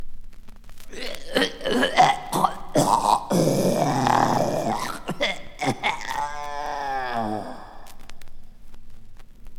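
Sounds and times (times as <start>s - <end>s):
man being strangled: 0.9s - 8.4s.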